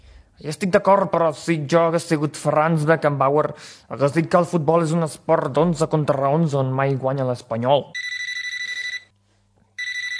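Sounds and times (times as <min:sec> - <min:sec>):
speech: 0:00.4 - 0:08.0
telephone ringing with an incoming call: 0:08.0 - 0:09.1, 0:09.8 - 0:10.1.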